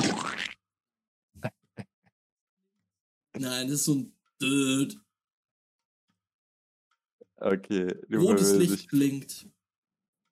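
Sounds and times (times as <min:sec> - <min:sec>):
speech: 0:03.4 - 0:05.0, 0:07.4 - 0:09.6
voice imitating an electronic access-denied buzzer: 0:07.7 - 0:08.8.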